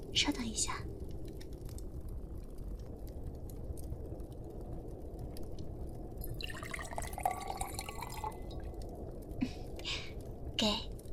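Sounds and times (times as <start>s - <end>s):
steady low hum: 0.0s - 11.1s
soft water drip: 0.9s - 11.1s
hot just-boiled water poured into a glass: 6.2s - 8.7s.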